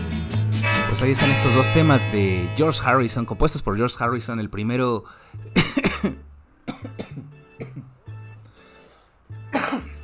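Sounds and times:
speech: 0:00.9 - 0:07.3
person having a short coughing fit: 0:05.6 - 0:07.9, 0:09.5 - 0:10.0.

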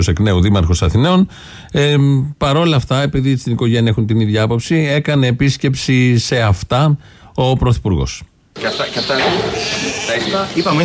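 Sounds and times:
speech: 0:00.0 - 0:10.8
sheep bleating on a dairy sheep farm: 0:09.2 - 0:10.8.

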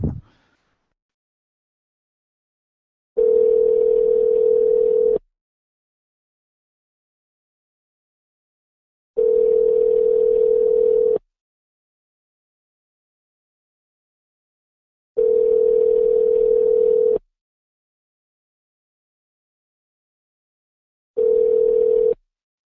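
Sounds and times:
ringback tone on a returned telephone call: 0:03.2 - 0:05.2, 0:09.2 - 0:11.2, 0:15.2 - 0:17.2, 0:21.2 - 0:22.2.

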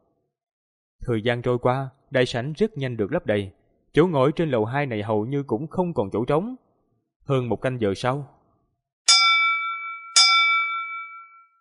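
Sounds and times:
speech: 0:01.0 - 0:06.6, 0:07.2 - 0:08.4
loud ringing bell strikes in an auction hall: 0:09.1 - 0:11.5.

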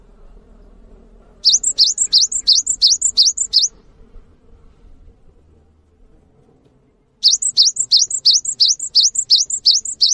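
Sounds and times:
cinereous tit singing high clipped two-note whistles: 0:01.4 - 0:03.7, 0:07.2 - 0:10.1.

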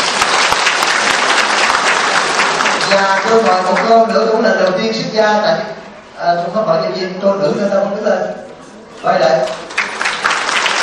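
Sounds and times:
audience applause at a Buddhist dharma assembly in San Jose: 0:00.0 - 0:04.0, 0:09.5 - 0:10.8
speech: 0:02.9 - 0:08.4, 0:09.0 - 0:09.7.

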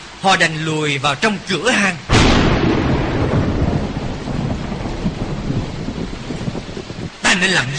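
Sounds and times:
heavy rain: 0:00.0 - 0:07.7
speech: 0:00.2 - 0:02.8, 0:07.4 - 0:07.7
rumbling thunder: 0:02.1 - 0:07.2.

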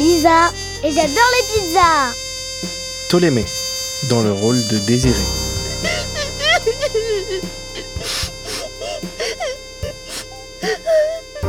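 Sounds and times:
child imitating crying with wails and sobs: 0:00.0 - 0:02.2, 0:05.8 - 0:11.4
speech: 0:00.5 - 0:05.4.

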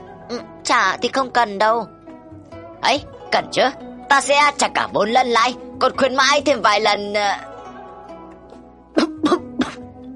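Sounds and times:
speech: 0:00.3 - 0:02.0, 0:02.8 - 0:07.5
man coughing coarsely: 0:09.0 - 0:09.9.

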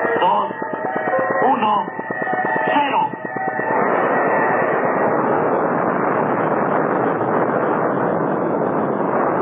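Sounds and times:
person speaking: 0:00.0 - 0:03.2
synthetic tones: 0:00.0 - 0:05.5
Atlas rocket engines roaring at launch: 0:00.0 - 0:09.4.

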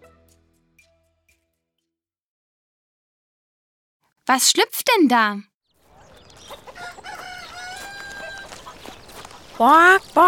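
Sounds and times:
speech: 0:04.3 - 0:05.5, 0:09.6 - 0:10.2
flock of domestic chickens clucking: 0:05.8 - 0:10.2
rooster-like crow: 0:06.6 - 0:08.7.

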